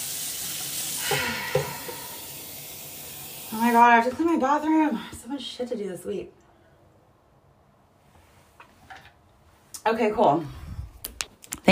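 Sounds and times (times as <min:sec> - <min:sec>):
running water from a tap: 0:00.0 - 0:04.8
speech: 0:03.5 - 0:06.4, 0:09.8 - 0:10.6.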